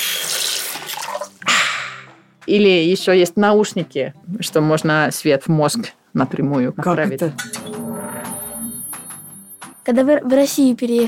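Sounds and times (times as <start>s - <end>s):
water running from a kitchen tap: 0.0s - 1.4s
speech: 2.5s - 7.7s, 9.8s - 11.0s.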